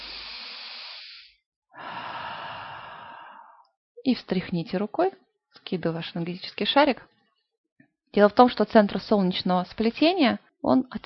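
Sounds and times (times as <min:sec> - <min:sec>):
deep breath during guided chakra meditation: 0:00.0 - 0:03.7
speech: 0:04.0 - 0:07.1, 0:08.1 - 0:11.0.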